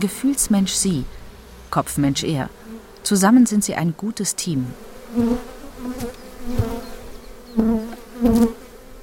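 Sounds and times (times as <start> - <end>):
speech: 0.0 - 6.7
many honeybees buzzing at an open hive: 0.0 - 9.0.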